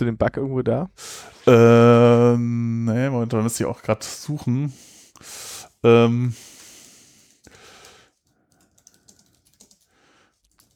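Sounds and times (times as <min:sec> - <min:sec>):
speech: 0:00.0 - 0:06.5
soft typing on a computer keyboard: 0:06.8 - 0:10.7.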